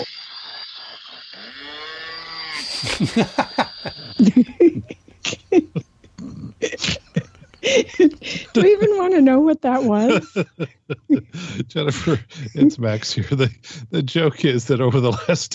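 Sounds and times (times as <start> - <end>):
speech: 0.0 - 0.2, 2.6 - 4.8, 8.6 - 15.5
laughter: 0.0 - 1.7, 2.4 - 15.5
drawn-out nasal cow moo: 1.5 - 2.7.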